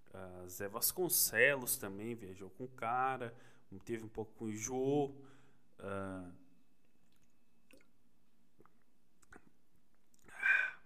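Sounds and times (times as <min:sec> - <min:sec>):
speech: 0:00.2 - 0:06.4
person swallowing and exhaling after a sip of water: 0:07.0 - 0:10.8.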